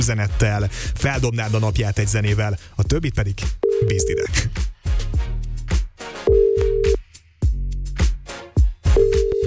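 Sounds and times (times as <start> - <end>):
speech: 0.0 - 4.7
busy rhythmic musical backing: 0.0 - 9.4
phone ringback tone with mid-pitched beeps: 3.6 - 4.3, 6.3 - 7.0, 9.0 - 9.4.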